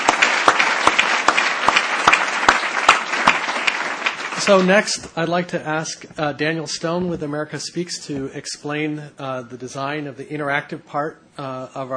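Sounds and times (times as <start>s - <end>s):
audience applause: 0.0s - 4.9s
speech: 4.4s - 11.9s.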